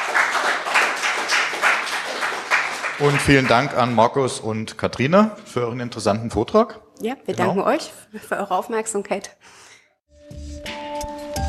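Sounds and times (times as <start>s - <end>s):
audience applause after a talk and question session: 0.0s - 4.2s
speech: 3.0s - 9.7s.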